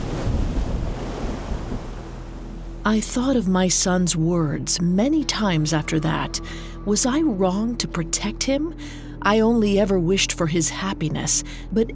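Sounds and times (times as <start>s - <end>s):
storm wave crashing over ship: 0.0s - 2.8s
speech: 2.8s - 11.9s.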